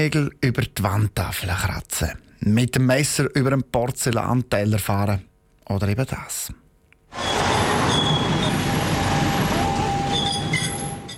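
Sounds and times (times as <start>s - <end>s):
speech: 0.0s - 7.4s
tram wheels squealing on a curve in Tüfe, Appenzell Ausserrhoden: 7.1s - 11.1s.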